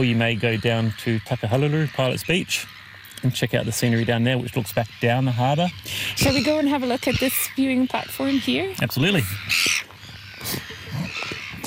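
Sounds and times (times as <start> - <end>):
speech: 0.0 - 9.7
red-billed gulls calling at a breeding colony: 0.0 - 11.6.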